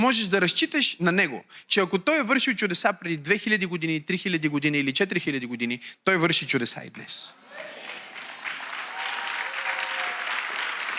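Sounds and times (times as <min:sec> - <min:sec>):
speech: 0:00.0 - 0:07.4
congregation applauding: 0:07.4 - 0:10.9.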